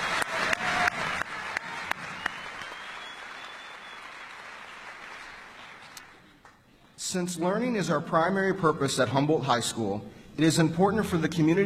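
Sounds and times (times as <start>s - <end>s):
audience applauding at a high school student recognition: 0.0s - 6.2s
loud individual claps: 0.0s - 6.6s
speech: 7.1s - 11.6s.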